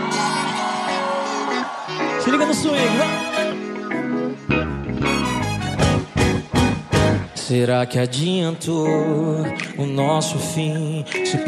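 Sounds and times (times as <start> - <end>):
large concert crowd in Recife shouting and cheering: 0.0 - 8.2
speech: 2.3 - 3.5, 7.5 - 11.4.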